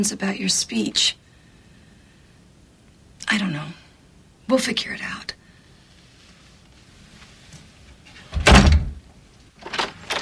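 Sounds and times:
speech: 0:00.0 - 0:01.2, 0:03.3 - 0:03.8, 0:04.5 - 0:05.4
door swinging open with a whoosh and rattle: 0:08.1 - 0:09.0.

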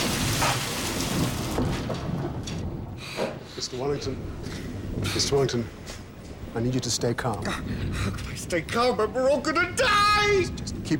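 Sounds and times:
deep rolling thunder rumble: 0:00.0 - 0:03.0
dense rain hissing in a heavy storm: 0:00.0 - 0:09.6
speech: 0:03.6 - 0:06.0, 0:06.6 - 0:10.9.

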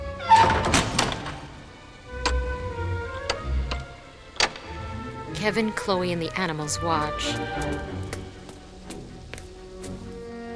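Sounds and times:
trap door on a puppy's enclosure being shut: 0:00.1 - 0:05.3
clunks and taps: 0:03.2 - 0:04.7
speech: 0:05.4 - 0:08.2.

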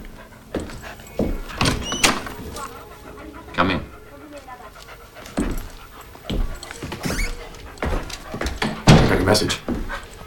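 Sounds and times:
door opening: 0:01.2 - 0:02.8, 0:06.3 - 0:09.4
latch and hinge squeak: 0:01.6 - 0:02.4, 0:06.9 - 0:07.9
speech: 0:09.3 - 0:09.7.

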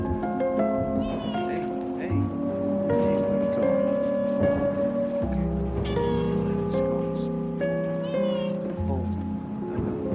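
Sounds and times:
steady background of sustained tones: 0:00.0 - 0:10.1
kitten mewing while being grabbed: 0:01.0 - 0:01.7, 0:08.0 - 0:08.8.

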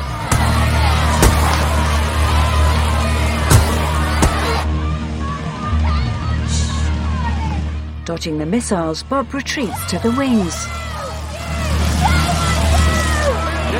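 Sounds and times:
sharp thuds and bangs: 0:00.2 - 0:01.9, 0:03.4 - 0:04.7
crowd of protesting women shouting through a tannoy loudspeaker: 0:00.3 - 0:08.3, 0:09.3 - 0:13.7
speech: 0:08.1 - 0:10.9.

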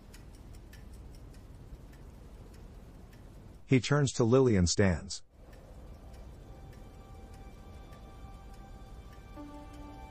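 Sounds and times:
clock ticking: 0:00.0 - 0:03.8, 0:05.4 - 0:10.0
faint low hum: 0:00.0 - 0:10.0
speech: 0:03.7 - 0:05.3.

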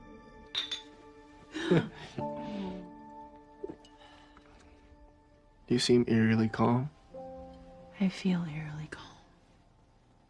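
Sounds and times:
glass beer bottles clinking together in a toast: 0:00.4 - 0:01.2
speech: 0:01.6 - 0:02.4, 0:05.7 - 0:07.0, 0:08.0 - 0:09.0.

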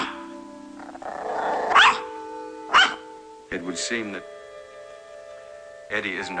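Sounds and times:
toy poodle sharp high bark: 0:00.0 - 0:00.2, 0:01.7 - 0:02.1, 0:02.7 - 0:03.0
toy poodle growling low: 0:00.8 - 0:02.1
speech: 0:03.5 - 0:04.4, 0:05.9 - 0:06.3.

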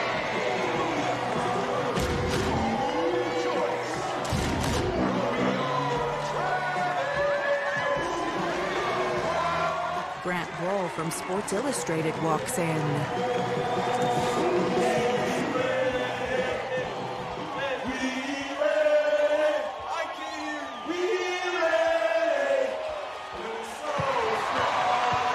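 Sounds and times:
capacity crowd cheering in a packed basketball arena in Akron: 0:00.0 - 0:25.3
sharp thuds from the basketball court: 0:04.2 - 0:05.0
speech: 0:11.0 - 0:15.4.

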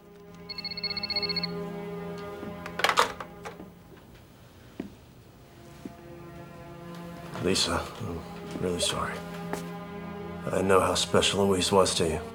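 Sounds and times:
telephone ringing with an electronic trill: 0:00.4 - 0:01.6
speech: 0:07.4 - 0:09.6, 0:10.5 - 0:12.3.

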